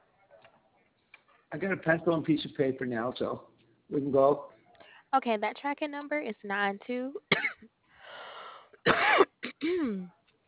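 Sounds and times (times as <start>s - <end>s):
speech: 1.5s - 4.5s, 5.1s - 7.7s, 8.8s - 10.2s
harsh throat-clearing cough: 7.3s - 7.7s, 8.8s - 10.0s.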